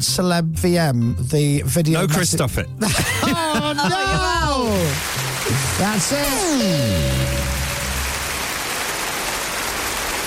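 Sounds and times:
speech: 0.0s - 7.5s
laughter: 2.8s - 5.0s
applause sound effect sounding like rainfall: 3.8s - 10.2s
low tonal hum: 6.6s - 8.5s.

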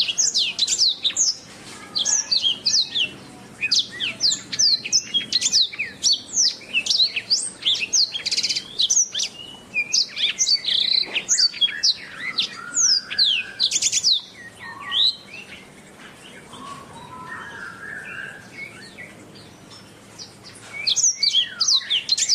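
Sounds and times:
Oriental magpie-robin in sustained song: 0.0s - 22.3s.

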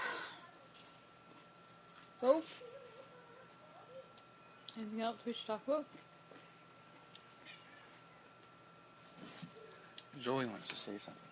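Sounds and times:
speech: 2.2s - 2.7s, 4.8s - 6.1s, 10.2s - 11.3s
cat meowing: 7.4s - 8.0s.

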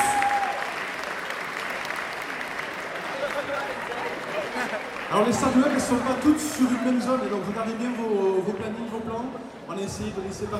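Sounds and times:
audience applause at a gaming convention opening ceremony: 0.0s - 8.1s
speech: 5.1s - 10.5s.

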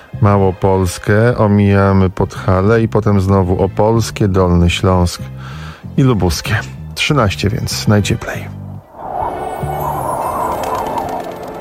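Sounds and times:
speech: 0.2s - 8.6s
bird chirping in a radio station jingle: 8.7s - 11.5s.

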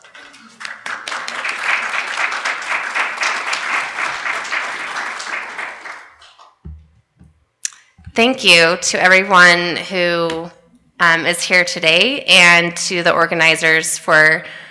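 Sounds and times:
audience applauding to welcome guest speakers at a nursing and midwifery gathering: 0.0s - 6.6s
speech: 8.2s - 14.6s.

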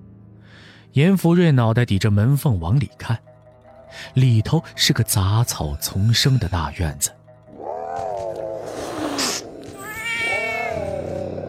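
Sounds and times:
speech: 0.9s - 3.3s, 3.9s - 7.2s
feral cats yowling in an overgrown weedy courtyard: 7.5s - 11.4s.

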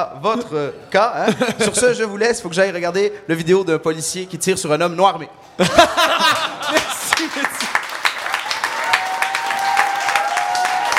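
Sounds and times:
speech: 0.0s - 7.9s
laughter: 1.2s - 2.1s, 5.6s - 7.6s
studio audience at a television talk show applauding: 6.3s - 10.9s.

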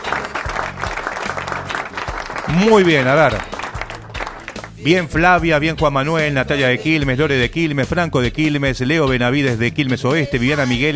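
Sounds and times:
crowd applause sound effect: 0.0s - 4.9s
speech: 2.5s - 3.5s, 4.8s - 10.9s.

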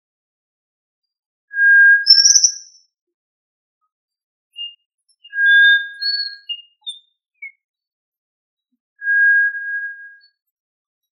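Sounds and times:
tinamou chirps and long whistled note: 2.0s - 2.8s, 4.6s - 7.6s.

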